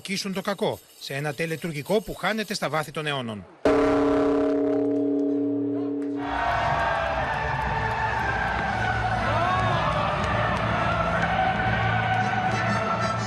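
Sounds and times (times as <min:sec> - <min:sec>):
speech: 0:00.0 - 0:04.2
deep Buddhist temple bell struck by monks in Tokyo: 0:03.7 - 0:06.7
crowd noise: 0:05.2 - 0:13.2.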